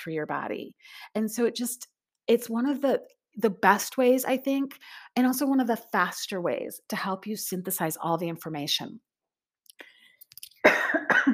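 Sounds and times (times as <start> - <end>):
speech: 0.0 - 9.1
person coughing: 10.6 - 11.3.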